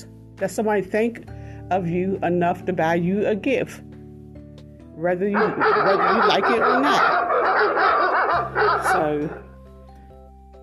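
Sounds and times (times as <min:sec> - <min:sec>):
speech: 0:00.0 - 0:03.9, 0:05.0 - 0:09.4
dog barking and yipping: 0:05.4 - 0:09.5.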